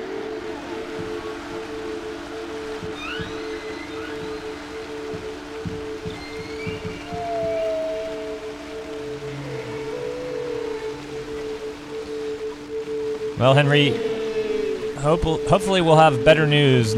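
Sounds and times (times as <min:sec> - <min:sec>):
steady underwater hum: 0:00.0 - 0:16.9
whale calls with rising whistles and moan: 0:00.0 - 0:16.9
scattered low knocks: 0:02.6 - 0:08.0
speech: 0:13.4 - 0:14.1, 0:15.0 - 0:16.9.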